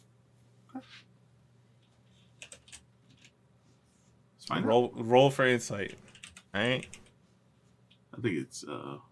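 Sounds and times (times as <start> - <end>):
low electrical hum: 0.0 - 9.1
speech: 0.8 - 1.1, 4.5 - 7.0, 8.2 - 9.1
clicks on a computer keyboard: 2.4 - 3.4, 5.9 - 7.1.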